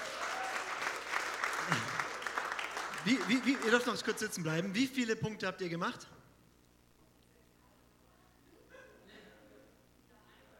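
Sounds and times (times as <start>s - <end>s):
audience clapping for two participants: 0.0s - 4.4s
speech: 3.0s - 6.2s.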